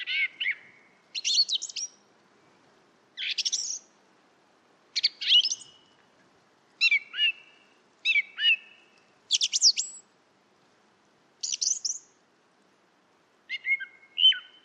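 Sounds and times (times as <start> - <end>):
song thrush singing: 0.0 - 2.0, 3.2 - 4.0, 5.0 - 6.0, 6.8 - 10.1, 11.4 - 12.2, 13.5 - 14.6.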